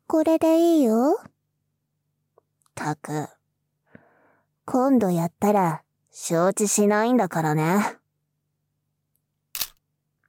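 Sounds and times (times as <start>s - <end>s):
speech: 0.1s - 1.3s, 2.8s - 3.4s, 4.7s - 8.0s
camera shutter click taking a photo: 9.6s - 9.8s.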